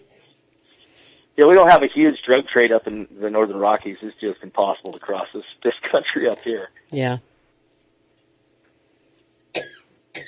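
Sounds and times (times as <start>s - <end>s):
speech: 1.4s - 7.3s, 9.5s - 10.2s
person coughing in a coughing fit: 9.6s - 10.2s.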